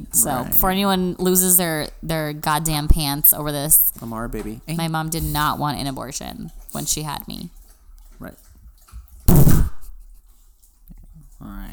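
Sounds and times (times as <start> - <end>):
speech: 0.2 - 7.6, 8.2 - 8.4
person gulping water loudly: 9.2 - 10.1.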